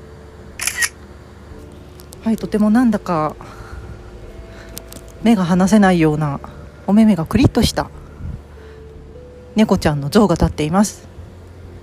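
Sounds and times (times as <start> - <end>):
camera shutter click at a night market: 0.6 - 1.0
speech: 2.2 - 3.6, 5.2 - 8.0, 9.6 - 11.1.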